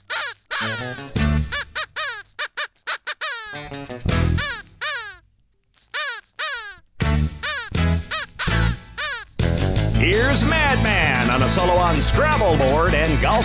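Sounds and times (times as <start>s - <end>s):
bird puppet making crow-like caws: 0.0s - 9.5s
speech: 0.6s - 1.2s, 10.3s - 13.4s.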